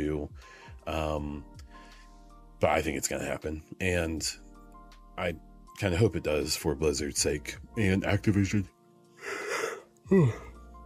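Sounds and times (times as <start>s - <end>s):
speech: 0.0s - 1.6s, 2.6s - 4.4s, 5.2s - 9.5s, 10.1s - 10.5s
person yawning: 9.2s - 10.6s.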